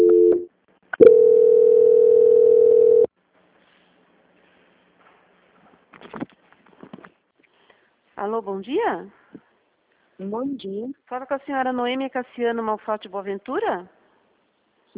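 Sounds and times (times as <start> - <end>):
telephone transfer tone for a call passed to a bank's quality-control line: 0.0 - 3.1
speech: 8.3 - 9.2, 10.2 - 14.0.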